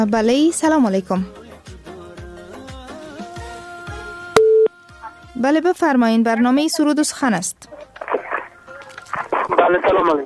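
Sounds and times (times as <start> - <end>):
speech: 0.0 - 1.4, 5.4 - 7.9, 9.5 - 10.2
telephone busy signal on a call that failed to connect: 4.4 - 4.7.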